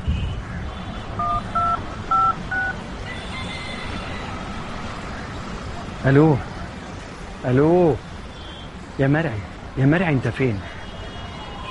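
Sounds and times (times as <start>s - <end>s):
telephone keypad tones dialing a number: 1.2s - 2.8s
speech: 6.0s - 6.5s, 7.4s - 8.1s, 9.0s - 10.7s.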